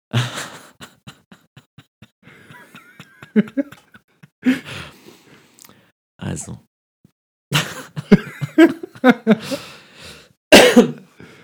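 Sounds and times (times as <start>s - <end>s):
speech: 0.1s - 0.4s, 3.4s - 3.8s, 6.4s - 6.6s, 8.1s - 9.7s
laughter: 0.2s - 4.7s, 7.6s - 9.7s
person coughing harshly: 10.5s - 11.1s.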